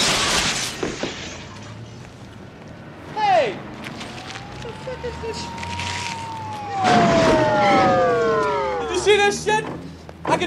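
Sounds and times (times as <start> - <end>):
police cars driving up onto a walkway: 1.0 - 10.4
voices murmuring: 3.0 - 10.4
police car siren wailing: 3.3 - 9.6
speech: 5.1 - 5.8.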